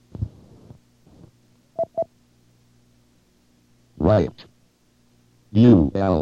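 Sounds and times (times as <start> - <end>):
telephone keypad beeps: 1.8 - 2.1
speech: 4.1 - 4.5, 5.5 - 6.2.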